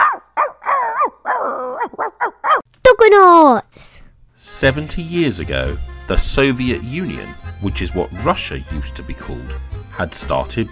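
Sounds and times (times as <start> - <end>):
dog barking: 0.0 - 2.6
speech: 3.0 - 10.7.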